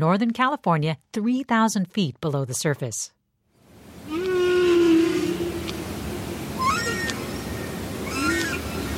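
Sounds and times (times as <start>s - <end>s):
speech: 0.0s - 3.2s
steady murky hiss: 3.6s - 8.9s
humpback whale and sperm whale calls underwater off Northern California: 4.0s - 8.9s.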